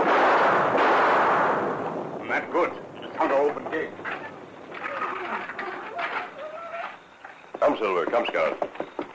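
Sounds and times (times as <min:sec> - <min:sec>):
loud rumbling thunderclap on a dark night: 0:00.0 - 0:05.6
speech: 0:03.4 - 0:04.1, 0:07.8 - 0:08.8.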